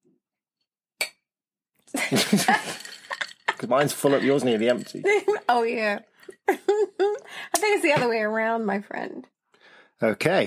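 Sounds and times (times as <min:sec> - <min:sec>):
laughter: 0:02.0 - 0:05.6, 0:06.4 - 0:08.0
two glasses clinking in a toast: 0:02.0 - 0:06.6
speech: 0:02.1 - 0:02.9, 0:03.6 - 0:09.3, 0:10.0 - 0:10.4.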